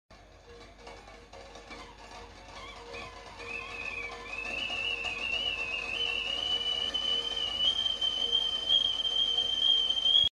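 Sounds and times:
metal kettle boiling: 0.2 - 10.3
metal kettle whistling very loud: 2.5 - 10.3.

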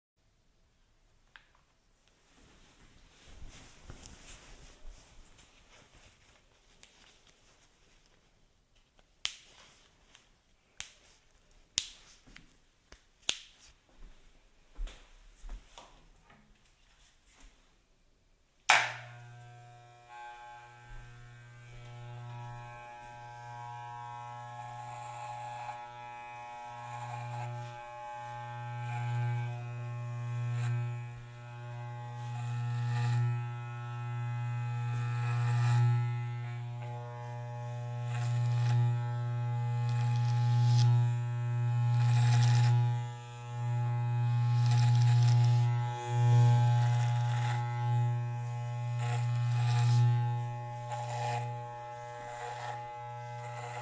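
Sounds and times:
hair being cut by a barber: 18.7 - 53.8.

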